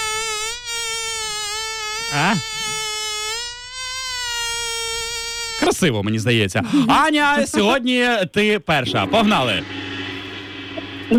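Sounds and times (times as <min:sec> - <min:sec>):
mosquito whining: 0:00.0 - 0:05.8
speech: 0:02.1 - 0:02.7, 0:05.6 - 0:09.8.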